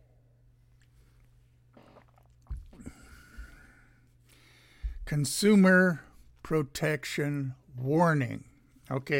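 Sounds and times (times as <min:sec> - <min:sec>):
person sipping a drink: 0:00.8 - 0:03.7
gulping swallow of a drink: 0:01.8 - 0:03.1
speech: 0:05.1 - 0:09.1.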